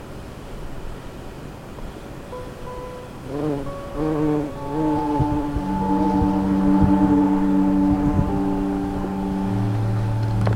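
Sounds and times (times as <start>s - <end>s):
wasp buzzing: 2.4s - 10.5s.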